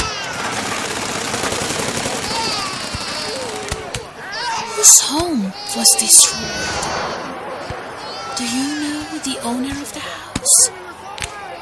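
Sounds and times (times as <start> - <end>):
crackling bursts: 0.0 - 4.1, 5.9 - 8.5
speech: 4.8 - 7.5, 8.4 - 11.2
dense roaring barrage of explosions: 6.4 - 8.4.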